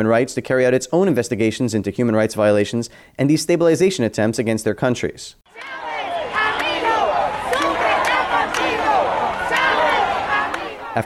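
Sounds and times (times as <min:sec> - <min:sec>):
speech: 0:00.0 - 0:05.9
large crowd cheering and shouting at a rally: 0:05.5 - 0:11.0
people yelling in crowd: 0:05.5 - 0:11.0.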